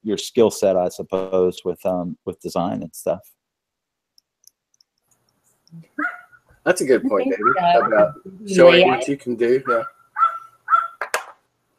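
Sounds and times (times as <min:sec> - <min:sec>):
speech: 0:00.0 - 0:03.4, 0:05.7 - 0:10.0
dog barking and yelping: 0:06.0 - 0:06.3, 0:07.4 - 0:08.2, 0:09.6 - 0:11.0.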